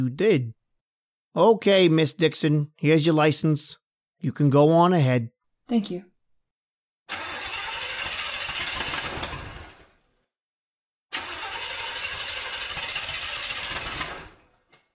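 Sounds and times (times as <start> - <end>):
speech: 0.0 - 0.6, 1.3 - 6.1
car engine with motor trouble cranked and started: 7.1 - 10.1, 11.1 - 14.7.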